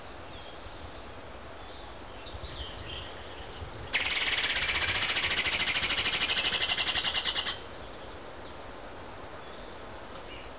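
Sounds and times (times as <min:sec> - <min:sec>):
squirrel bawling: 0:04.0 - 0:07.7.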